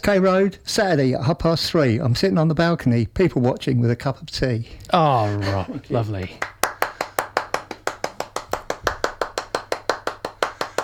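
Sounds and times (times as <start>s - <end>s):
speech: 0.0s - 6.6s
single pair of hands clapping in a steady rhythm: 6.2s - 10.8s.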